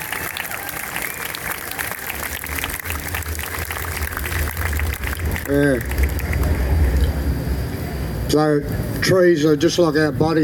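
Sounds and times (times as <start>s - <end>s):
audience applause: 0.0s - 7.2s
low rumble: 1.3s - 10.4s
speech: 5.5s - 6.0s, 8.3s - 10.4s.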